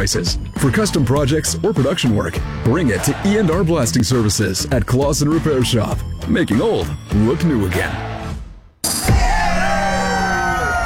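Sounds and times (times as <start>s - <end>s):
speech: 0.0s - 8.1s
large crowd cheering and applauding for farm crews working the harvest: 9.0s - 10.8s
whoops and yells: 9.0s - 10.8s.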